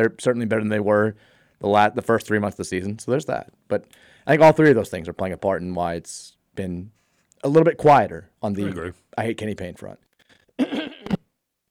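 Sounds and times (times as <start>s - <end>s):
speech: 0.0s - 10.0s
person coughing harshly: 8.6s - 8.9s, 10.6s - 11.3s.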